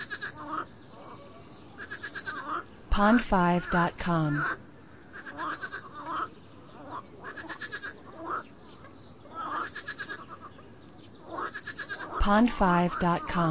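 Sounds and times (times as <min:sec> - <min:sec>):
frog calls with pulsed notes and upward-swept croaks: 0:00.0 - 0:00.8, 0:01.8 - 0:02.7, 0:03.6 - 0:08.5, 0:09.3 - 0:10.6, 0:11.2 - 0:13.4
speech: 0:03.0 - 0:04.6, 0:12.3 - 0:13.4.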